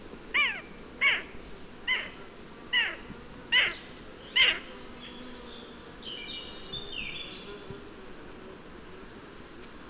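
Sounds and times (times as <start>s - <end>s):
Eurasian jay Garrulus glandarius giving descending mewing calls: 0.4s - 1.3s, 1.9s - 4.7s.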